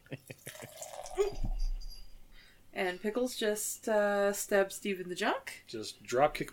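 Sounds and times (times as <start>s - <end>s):
beer fizzing: 0.4s - 1.6s
amber beer pouring into a glass: 0.4s - 1.9s
speech: 2.8s - 6.5s.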